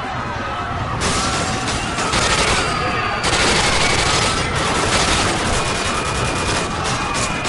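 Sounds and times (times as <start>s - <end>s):
panicked screams: 0.0s - 7.4s
video game automatic gunfire: 1.0s - 7.4s.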